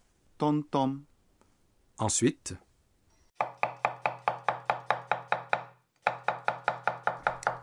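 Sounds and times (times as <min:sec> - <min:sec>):
speech: 0:00.4 - 0:01.1, 0:02.0 - 0:02.7
knife chopping on a kitchen cutting board: 0:03.4 - 0:07.6.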